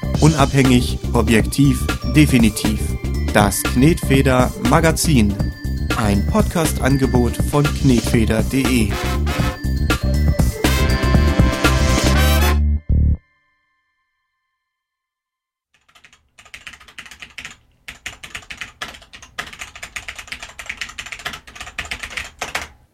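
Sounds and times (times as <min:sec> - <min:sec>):
short musical jingle: 0:00.1 - 0:14.4
speech: 0:00.2 - 0:09.4
rapid typing on a mechanical computer keyboard: 0:15.8 - 0:22.8.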